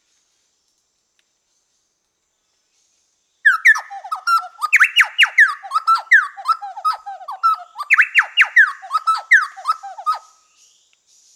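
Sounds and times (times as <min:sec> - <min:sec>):
Chowchilla (Orthonyx spaldingii) song: 0:03.5 - 0:10.2.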